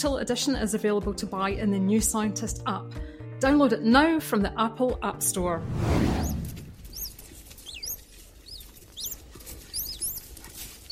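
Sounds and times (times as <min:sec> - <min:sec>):
speech: 0:00.0 - 0:06.2
faint low rumble: 0:05.4 - 0:07.3
naked mole rat squeaking: 0:06.9 - 0:10.8.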